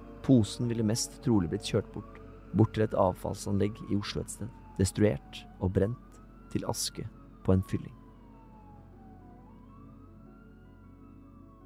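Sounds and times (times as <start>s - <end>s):
ambulance siren wailing: 0.0s - 11.6s
speech: 0.3s - 8.0s.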